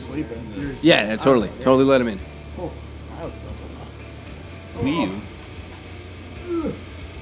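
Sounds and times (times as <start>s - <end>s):
steady low hum: 0.0s - 7.2s
speech: 0.1s - 3.6s, 4.8s - 5.3s
cat meowing at the door: 4.8s - 5.4s.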